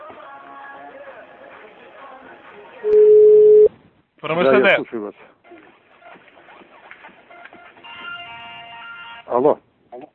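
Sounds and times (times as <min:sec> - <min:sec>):
speech: 0:02.8 - 0:03.0, 0:04.2 - 0:05.4, 0:09.3 - 0:09.7
telephone line tone while redialing a call: 0:02.9 - 0:03.7.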